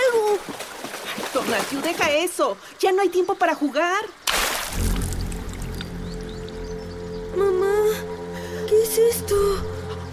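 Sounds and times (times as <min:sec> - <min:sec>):
water splashing in a river: 0:00.0 - 0:02.4, 0:04.2 - 0:06.2
speech: 0:01.5 - 0:04.8, 0:08.9 - 0:09.8.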